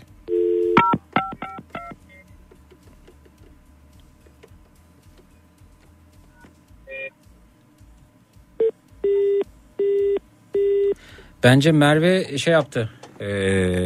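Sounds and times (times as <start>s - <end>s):
loud electronic telephone signal tones for a failed call: 8.6s - 11.0s
quick telephone dialing beeps: 8.6s - 11.0s
speech: 11.4s - 13.8s.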